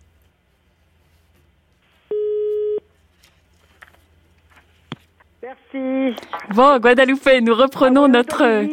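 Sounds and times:
telephone busy tone after an interrupted call: 0:02.1 - 0:02.8
speech: 0:05.4 - 0:08.7.

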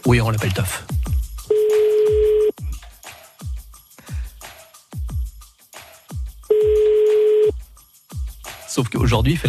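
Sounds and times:
speech: 0:00.0 - 0:01.0, 0:08.8 - 0:09.4
regular thumping music beat: 0:00.0 - 0:09.4
ringback tones of an outgoing phone call: 0:01.5 - 0:02.5, 0:06.5 - 0:07.5.

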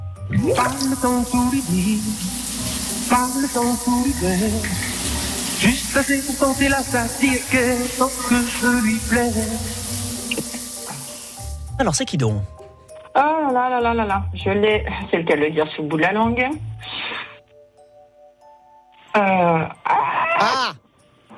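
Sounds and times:
speech: 0:00.3 - 0:04.9, 0:05.6 - 0:09.8, 0:11.8 - 0:12.6, 0:13.2 - 0:17.0, 0:19.2 - 0:19.8
person singing wordlessly: 0:00.3 - 0:11.2
running shower spraying water: 0:00.3 - 0:12.1.

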